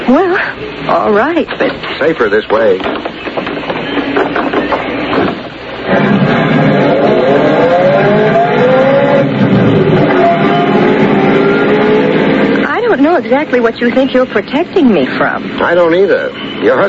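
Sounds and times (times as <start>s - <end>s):
speech: 0.1s - 3.3s, 13.0s - 16.8s
car engine revving and pulling away: 4.2s - 15.9s.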